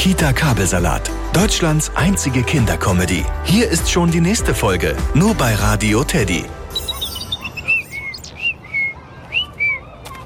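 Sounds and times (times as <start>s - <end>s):
speech: 0.0s - 6.6s
European robin chirping: 6.7s - 8.9s.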